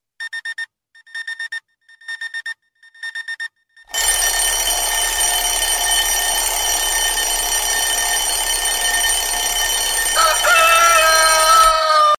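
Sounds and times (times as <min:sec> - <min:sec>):
high loud alarm clock ringtone: 0:03.9 - 0:12.1.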